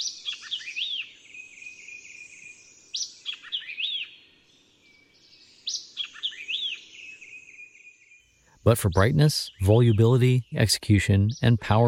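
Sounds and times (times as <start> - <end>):
white-eyed vireo singing: 0.0 - 11.8
speech: 8.7 - 11.8.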